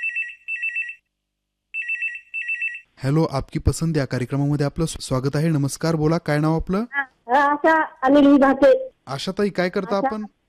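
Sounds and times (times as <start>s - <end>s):
telephone ringing with a bright electronic trilling ring: 0.0s - 1.0s, 1.8s - 2.9s
speech: 3.0s - 10.4s.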